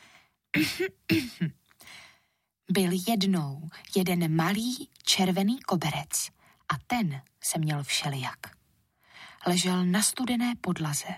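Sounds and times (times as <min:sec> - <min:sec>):
speech: 0:00.6 - 0:01.6, 0:02.7 - 0:08.6, 0:09.4 - 0:11.1
throat clearing: 0:00.6 - 0:01.6.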